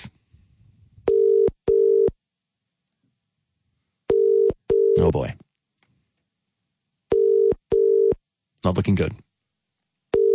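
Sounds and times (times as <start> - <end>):
telephone ringback tone of outgoing call: 1.1 - 2.1, 4.1 - 5.0, 7.1 - 8.2
speech: 5.1 - 5.4, 8.6 - 9.2.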